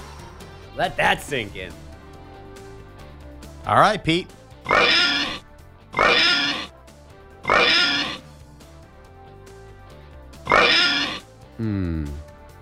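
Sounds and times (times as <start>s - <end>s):
speech: 0.8s - 1.9s, 3.6s - 5.2s, 11.6s - 12.2s
pig oinking: 4.6s - 6.7s, 7.4s - 8.2s, 10.4s - 11.3s.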